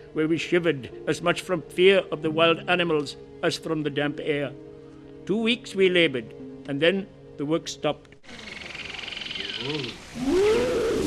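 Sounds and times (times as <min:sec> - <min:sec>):
speech: 0:00.2 - 0:04.7, 0:05.3 - 0:08.6, 0:09.6 - 0:10.8
croaking frogs at night: 0:08.2 - 0:10.3
night chorus of chirping insects: 0:08.3 - 0:10.1
tiger roaring at night: 0:09.6 - 0:11.0.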